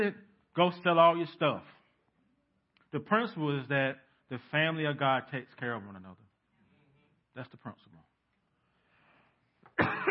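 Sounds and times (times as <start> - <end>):
speech: 0.0 - 1.8, 2.9 - 6.2, 7.4 - 8.0, 9.8 - 10.0
faint breath or throat catch: 8.5 - 9.6
preacher coughing: 9.7 - 10.0.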